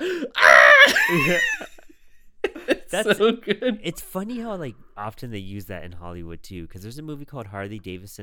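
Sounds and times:
person imitating a falling man's scream: 0.1 - 1.5
laughter: 0.8 - 3.8
speech: 1.1 - 1.7, 2.9 - 8.2.

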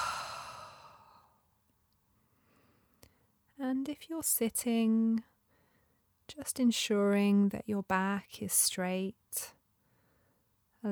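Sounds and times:
slow deep breath exhaled through the mouth: 0.0 - 1.2
speech: 3.7 - 5.3, 6.3 - 9.6.

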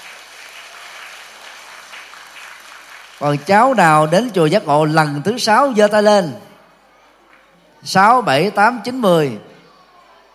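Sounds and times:
large audience clapping: 0.0 - 4.4
speech: 3.2 - 6.4, 7.8 - 9.5.

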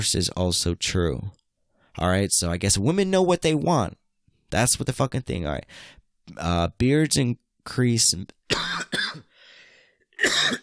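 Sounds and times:
speech: 0.0 - 1.4, 2.0 - 9.3, 10.2 - 10.6
throat clearing from a dry throat of someone getting over a cold: 8.5 - 9.3, 10.2 - 10.6.

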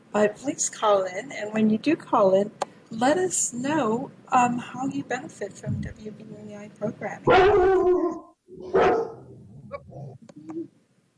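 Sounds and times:
speech: 0.2 - 9.1
dog barking: 7.3 - 9.3.

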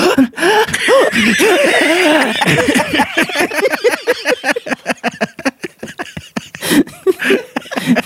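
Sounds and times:
person imitating uncontrollable gasping: 0.0 - 2.0, 6.5 - 8.0
laughter: 0.5 - 8.0.

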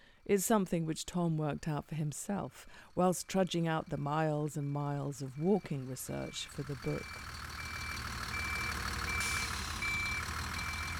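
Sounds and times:
speech: 0.2 - 7.4
open-top bus engine droning and juddering: 3.7 - 10.9
repeating reversing-style beep: 3.8 - 10.9
traffic noise on a road by the Thames: 3.9 - 10.9.

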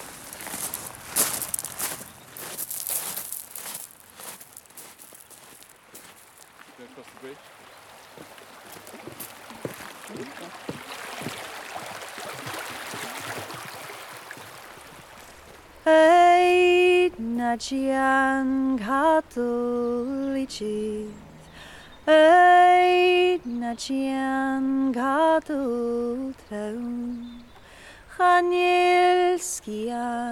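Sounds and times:
steady wash of rustling noise: 0.0 - 6.6
footsteps wading and walking across a stream beside a loch: 0.0 - 15.7
speech: 7.0 - 7.6, 10.1 - 11.4, 15.9 - 16.1, 17.2 - 21.2, 22.1 - 27.0, 28.2 - 30.3.

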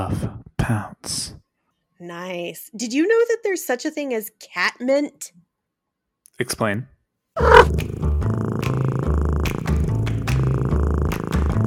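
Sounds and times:
speech: 0.0 - 1.2, 2.0 - 5.4, 6.4 - 8.0
cat purring: 7.4 - 11.6.

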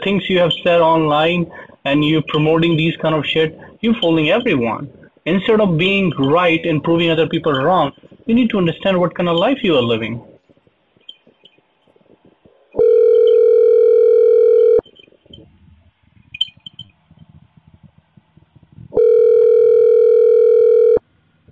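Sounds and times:
telephone ringing with electronic tone: 0.0 - 10.2, 12.8 - 15.5, 18.9 - 21.0
speech: 0.0 - 10.3
faint rustling: 0.0 - 21.5.

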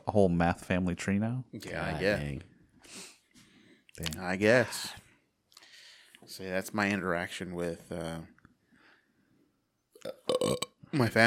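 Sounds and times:
speech: 0.1 - 3.1, 4.0 - 5.0, 6.3 - 8.4, 10.0 - 11.2
burp into a microphone: 10.0 - 11.2.

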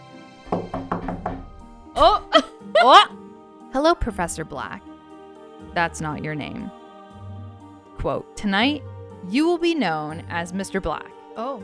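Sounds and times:
firm knocks on a door: 0.5 - 1.6
speech: 2.0 - 3.2, 3.8 - 4.9, 5.7 - 6.8, 8.0 - 11.6.

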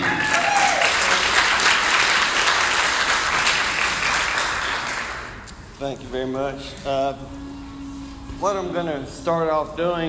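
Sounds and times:
audience applauding a speaker after an introduction: 0.0 - 5.5
speech: 5.9 - 7.6, 8.4 - 10.0.

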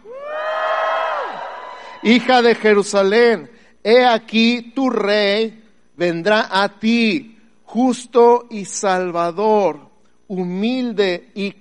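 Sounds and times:
crowd cheering: 0.0 - 2.8
speech: 2.0 - 11.6.

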